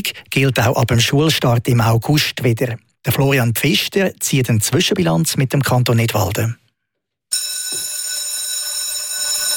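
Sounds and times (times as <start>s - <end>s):
speech: 0.0s - 6.6s
school bell ringing: 7.3s - 9.5s.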